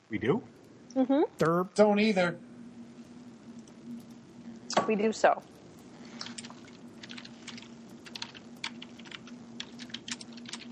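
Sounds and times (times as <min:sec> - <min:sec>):
steady low hum: 0:00.0 - 0:10.6
speech: 0:00.1 - 0:02.5, 0:04.8 - 0:05.5
rapid irregular typing on a computer keyboard: 0:06.2 - 0:10.6.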